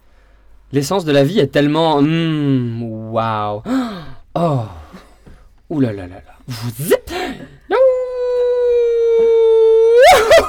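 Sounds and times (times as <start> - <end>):
speech: 0.7 - 5.0, 5.7 - 7.6
human voice mimicking a howling wolf pack: 7.7 - 10.4
laughter: 10.0 - 10.4.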